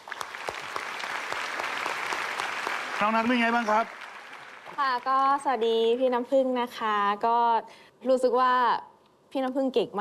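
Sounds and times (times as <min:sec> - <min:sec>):
audience applause for a singer: 0:00.0 - 0:05.5
speech: 0:03.0 - 0:04.0, 0:04.8 - 0:09.9.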